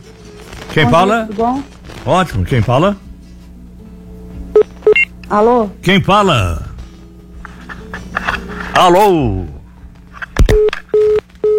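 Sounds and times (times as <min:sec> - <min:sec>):
speech: 0:00.7 - 0:03.0, 0:05.3 - 0:06.6, 0:08.8 - 0:09.5
telephone tone after a dropped call: 0:04.5 - 0:05.1, 0:10.5 - 0:11.5.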